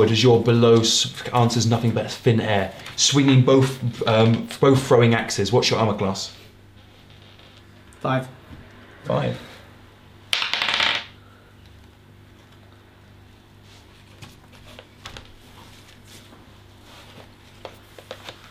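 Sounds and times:
speech: 0.0 - 6.4, 8.0 - 8.4, 9.0 - 9.5
dice rolling on a table during a tabletop role-playing game: 10.3 - 11.2.

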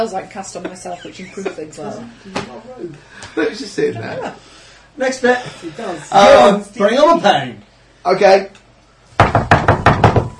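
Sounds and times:
speech: 0.0 - 8.6
loud heavy banging knocks on a door: 9.2 - 10.3.

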